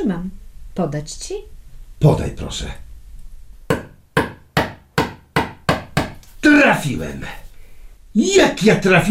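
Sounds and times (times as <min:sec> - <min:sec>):
speech: 0:00.0 - 0:02.8, 0:06.4 - 0:07.4, 0:08.2 - 0:09.0
hammer striking a nail: 0:03.7 - 0:06.2.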